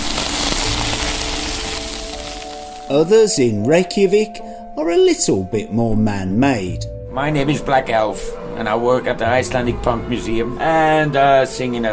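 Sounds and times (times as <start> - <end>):
lava sizzling as it reaches the Earth's surface in Iceland: 0.0 - 3.4
speech: 2.9 - 11.9.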